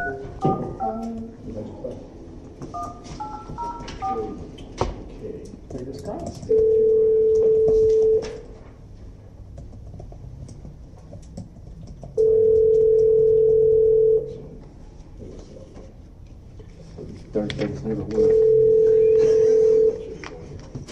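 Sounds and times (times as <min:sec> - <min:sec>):
telephone keypad tones of a number being dialed: 0:00.0 - 0:01.3, 0:02.7 - 0:04.5, 0:06.4 - 0:08.4, 0:12.1 - 0:14.3, 0:18.2 - 0:20.0
long steady telephone dial tones: 0:02.8 - 0:04.4, 0:06.5 - 0:08.4, 0:12.2 - 0:14.3, 0:18.2 - 0:20.1.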